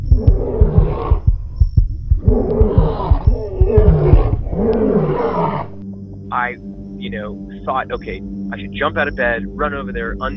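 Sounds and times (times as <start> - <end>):
male lion deep throbbing grunts: 0.1 - 5.8
speech: 7.1 - 10.3.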